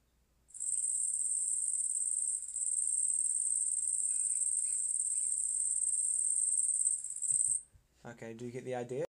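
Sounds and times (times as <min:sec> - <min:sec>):
grasshopper chirring trill: 0:00.5 - 0:07.6
speech: 0:08.0 - 0:09.1.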